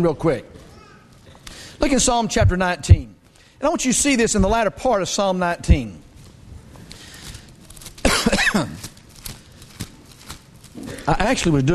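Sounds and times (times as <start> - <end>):
speech: 0.0 - 0.6, 1.5 - 6.0, 8.6 - 8.8, 11.1 - 11.7
preacher coughing from a tickle in the throat: 8.0 - 9.0
throat clearing: 8.1 - 8.9.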